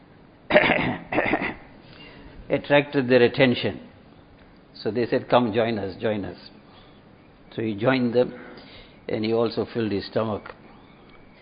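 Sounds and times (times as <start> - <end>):
man coughing: 0.5 - 1.7
speech: 2.5 - 3.9, 4.8 - 6.6, 7.5 - 8.5, 9.1 - 10.6.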